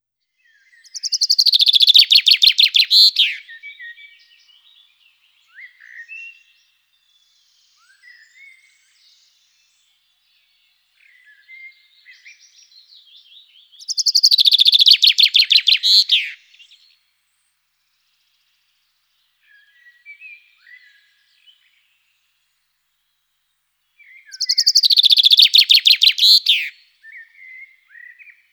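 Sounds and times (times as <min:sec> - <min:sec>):
common chaffinch singing: 0:00.8 - 0:03.6, 0:13.8 - 0:16.7, 0:24.3 - 0:27.2.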